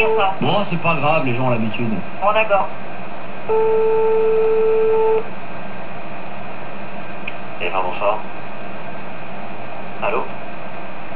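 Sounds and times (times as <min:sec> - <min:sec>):
telephone call tone of a call placed to a television station: 0:00.0 - 0:00.4, 0:03.5 - 0:05.3
speech: 0:00.0 - 0:02.9, 0:03.5 - 0:05.4, 0:07.6 - 0:08.4, 0:10.0 - 0:10.4.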